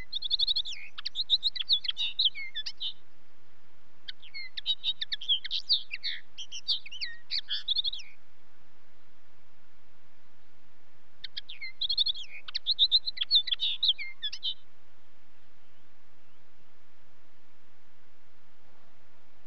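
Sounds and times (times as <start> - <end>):
common linnet song: 0.0 - 3.0, 4.0 - 8.2, 11.2 - 17.6.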